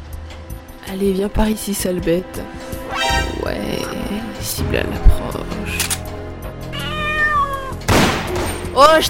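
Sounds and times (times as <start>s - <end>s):
speech: 0.9s - 2.7s, 3.4s - 5.9s, 8.8s - 9.0s
cat meowing: 6.7s - 7.8s.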